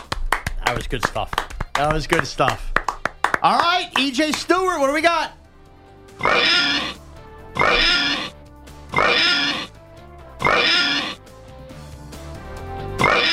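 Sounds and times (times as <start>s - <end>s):
speech: 0.7s - 2.8s, 3.4s - 5.4s, 6.2s - 7.0s, 7.6s - 8.3s
pig oinking loudly with squealing grunts: 6.2s - 7.0s, 7.6s - 9.7s, 10.4s - 11.2s, 13.0s - 13.3s.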